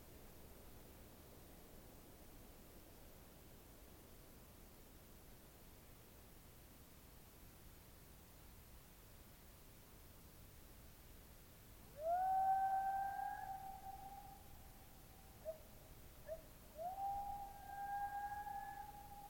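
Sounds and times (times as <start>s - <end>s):
steady soft hiss of air at dawn in open country: 0.0s - 19.2s
elk whistling call at dawn in central Washington: 12.0s - 14.6s, 16.3s - 19.2s.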